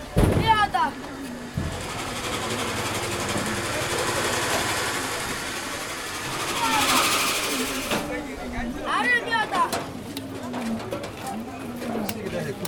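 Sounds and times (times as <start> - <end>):
indistinct voices murmuring in a busy market: 0.0 - 12.6
electric grain mill grinding flour at a market: 1.3 - 8.1.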